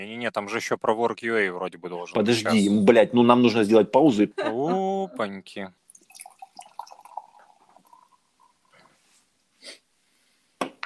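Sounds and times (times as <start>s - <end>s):
speech: 0.0s - 5.8s
foamy drink pouring into a glass: 5.9s - 8.8s.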